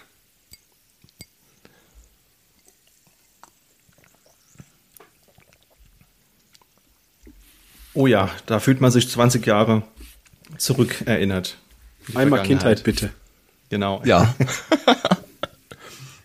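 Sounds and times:
glasses clinking together in a toast: 0.5s - 1.4s
speech: 8.0s - 10.0s, 10.6s - 15.0s
laughter: 14.2s - 15.7s.

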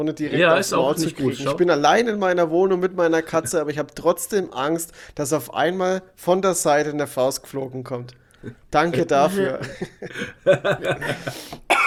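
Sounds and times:
speech: 0.0s - 11.8s
laughter: 9.1s - 11.5s
person coughing in short harsh bursts: 11.0s - 11.8s.

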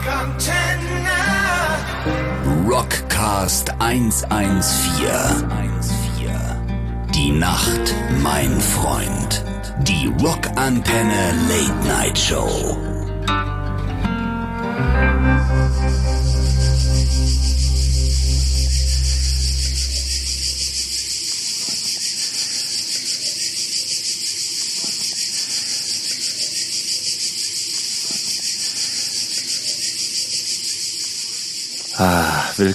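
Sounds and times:
music: 0.0s - 21.0s
speech: 2.7s - 6.0s, 7.2s - 13.5s, 14.8s - 16.3s, 32.0s - 32.7s
cicadas chirping outdoors at night in the mountains: 3.0s - 12.9s, 15.3s - 32.7s.

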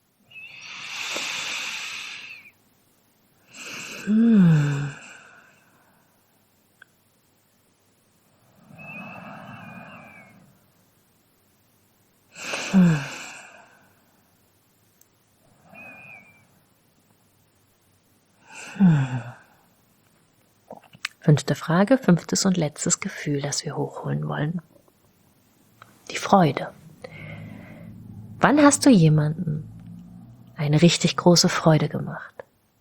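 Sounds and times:
deep breaths with voiced sighs during a guided reflective exercise: 0.3s - 2.6s, 3.5s - 6.2s, 8.4s - 10.6s, 12.3s - 14.2s, 15.5s - 16.5s, 18.4s - 19.7s, 26.0s - 28.8s
speech: 4.1s - 4.5s, 21.3s - 24.7s, 26.3s - 26.8s, 28.4s - 29.7s, 30.6s - 32.3s.

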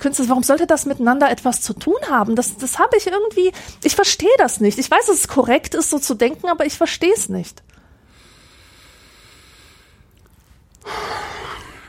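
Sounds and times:
speech: 0.0s - 7.8s
heavy breathy exhale: 7.9s - 10.1s, 10.8s - 11.8s.

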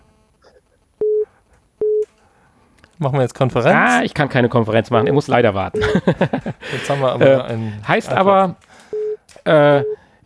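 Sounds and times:
telephone beeps announcing an incoming call: 0.0s - 2.2s, 4.9s - 6.2s, 8.9s - 10.0s
speech: 3.0s - 8.7s, 9.4s - 10.0s
laughter: 3.4s - 8.6s.

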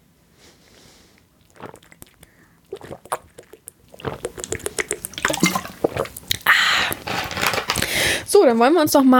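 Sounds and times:
faint breathy sounds: 0.7s - 8.3s
thirsty person sipping a drink as a toast: 1.1s - 7.1s
swallowing: 1.2s - 7.1s
speech: 8.4s - 9.1s.

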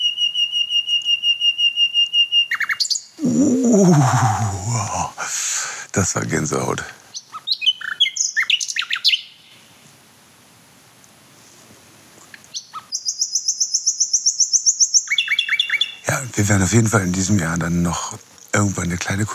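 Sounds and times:
nightingale singing: 0.0s - 5.1s, 7.0s - 9.7s, 12.3s - 17.6s
speech: 3.3s - 5.4s, 6.0s - 7.0s, 16.4s - 19.3s.

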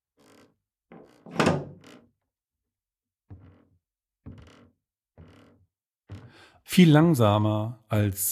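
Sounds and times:
metal door bolt slowly slid shut: 1.0s - 1.9s
speech: 6.7s - 8.2s.

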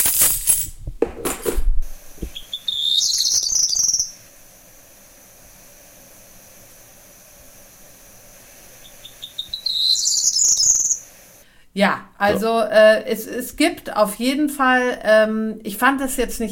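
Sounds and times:
faint steady hiss: 0.0s - 16.5s
high-pitched twittering birdsong: 2.4s - 4.2s, 8.8s - 11.1s
speech: 11.8s - 16.5s.

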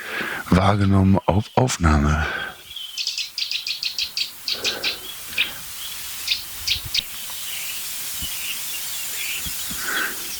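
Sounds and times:
steady hiss: 0.0s - 10.3s
speech: 0.6s - 2.5s
high thin bird chirps: 2.6s - 10.3s.

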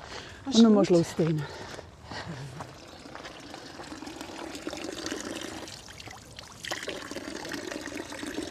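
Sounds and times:
speech: 0.4s - 1.6s
water running from a drinking fountain: 2.7s - 8.4s.

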